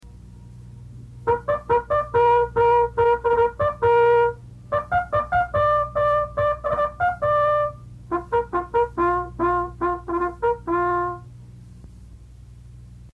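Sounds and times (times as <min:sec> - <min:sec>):
bugle call: 0:01.2 - 0:11.3.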